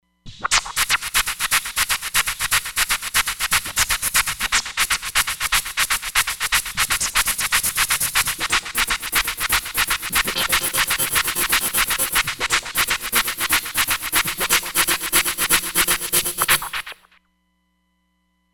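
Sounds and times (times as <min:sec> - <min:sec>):
dirty beat on a synthesizer: 0:00.5 - 0:17.1.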